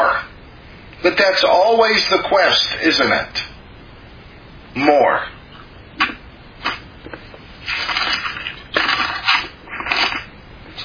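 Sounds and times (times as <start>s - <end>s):
speech: 1.0s - 3.5s, 4.7s - 5.4s
thin Bible pages turning: 7.6s - 10.3s.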